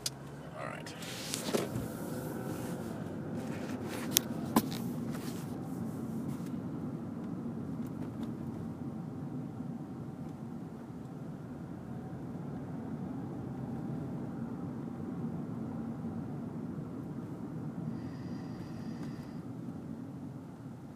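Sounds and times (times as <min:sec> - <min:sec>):
vehicles droning past at moderate distance: 0:00.0 - 0:20.8
street traffic rumble: 0:00.0 - 0:20.9.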